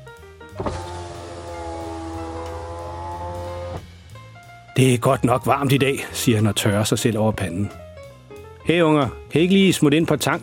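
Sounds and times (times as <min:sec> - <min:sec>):
speech: 0:00.6 - 0:00.9, 0:04.8 - 0:07.8, 0:08.7 - 0:10.4
car power windows whirring down at a car wash: 0:00.6 - 0:03.9.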